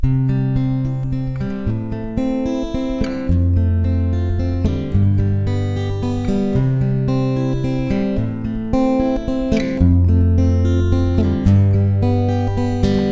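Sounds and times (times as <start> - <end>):
I-vi-IV-V chord progression in the key of C: 0.0 - 13.1.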